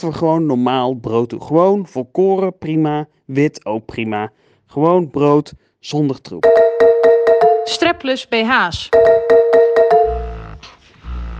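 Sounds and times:
speech: 0.0 - 6.6, 7.7 - 9.4
tonal electronic beeps of an electric breast pump: 6.4 - 8.0, 9.0 - 10.6.

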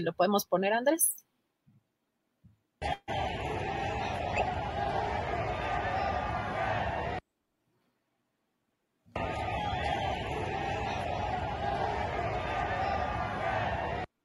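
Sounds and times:
speech: 0.0 - 1.3
distant crowd shouting and cheering: 2.8 - 7.2, 9.2 - 14.1.

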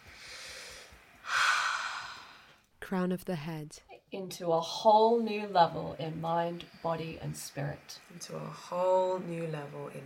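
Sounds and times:
deep breath during a tapping relaxation exercise: 0.0 - 2.6
speech: 2.8 - 10.0.

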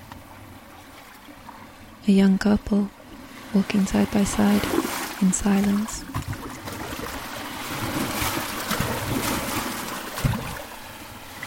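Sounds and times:
steady wash of moving water: 0.0 - 11.4
speech: 2.0 - 6.1
paddle strokes splashing while paddling a boat: 3.4 - 11.4.

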